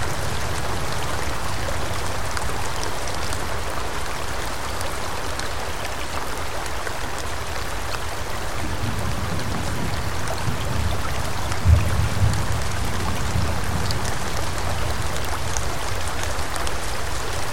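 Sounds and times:
steady rain falling in a forest: 0:00.0 - 0:17.5.

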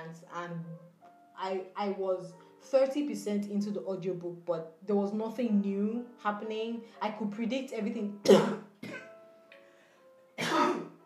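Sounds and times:
speech: 0:00.1 - 0:08.7
person coughing: 0:08.2 - 0:09.1, 0:10.4 - 0:11.0.

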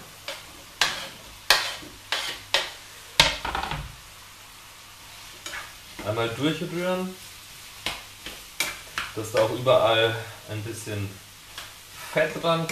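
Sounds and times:
mushroom pieces sizzling in a hot frying pan: 0:00.0 - 0:12.7
speech: 0:06.0 - 0:07.3, 0:09.2 - 0:11.2, 0:12.1 - 0:12.7.

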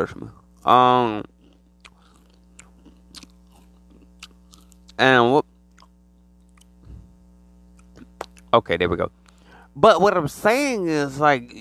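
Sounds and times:
speech: 0:00.0 - 0:01.3, 0:05.0 - 0:05.5, 0:08.5 - 0:09.2, 0:09.8 - 0:11.5
crunchy chip being chewed: 0:00.6 - 0:06.8, 0:07.7 - 0:08.5.

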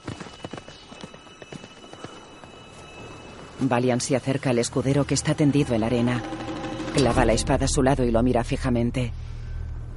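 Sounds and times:
horse hooves clattering on a sand arena as a horse rears and throws its rider: 0:00.0 - 0:03.6
speech: 0:03.6 - 0:09.2.

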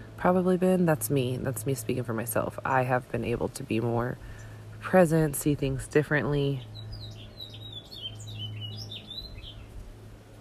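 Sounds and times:
steady low hum of noise: 0:00.0 - 0:10.4
speech: 0:00.2 - 0:06.8
many small birds chirping in spring: 0:03.2 - 0:10.4.

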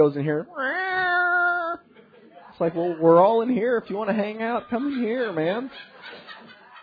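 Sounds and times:
speech: 0:00.0 - 0:00.8, 0:02.6 - 0:06.2
faint room noise: 0:00.0 - 0:06.8
kitten meowing from another room: 0:00.5 - 0:01.8
laughter: 0:01.9 - 0:02.5, 0:03.2 - 0:06.8.

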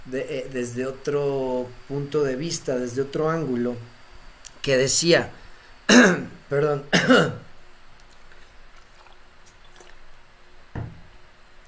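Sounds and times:
faint room hum: 0:00.0 - 0:11.6
speech: 0:00.1 - 0:04.0, 0:04.6 - 0:07.4
small sip of water: 0:08.0 - 0:10.2
gulp of water: 0:08.1 - 0:10.1.

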